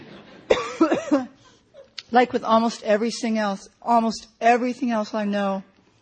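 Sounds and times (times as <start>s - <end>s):
person coughing: 0.4s - 2.0s
speech: 2.1s - 5.7s.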